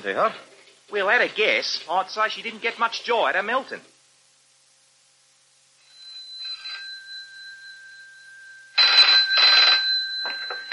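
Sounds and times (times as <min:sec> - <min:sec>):
speech: 0:00.0 - 0:03.9
telephone ringing: 0:05.8 - 0:10.7.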